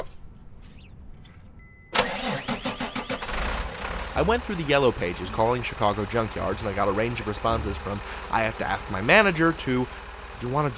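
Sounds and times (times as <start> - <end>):
remote start electronic beep: 1.6 - 2.0
rollback flatbed tow truck Mercedes-Benz 906 engine starting and idling: 1.9 - 10.7
speech: 4.2 - 10.7.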